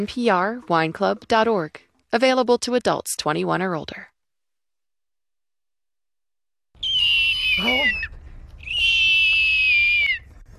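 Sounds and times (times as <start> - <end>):
speech: 0.0 - 4.1, 7.6 - 8.1
person imitating a hawk call: 6.9 - 10.2.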